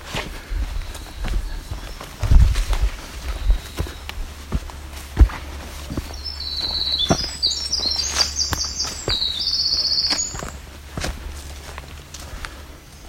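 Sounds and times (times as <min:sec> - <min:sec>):
footsteps on a difficult trail: 0:00.0 - 0:13.0
low rumbling noise: 0:00.0 - 0:13.0
winter wren singing: 0:00.7 - 0:10.9.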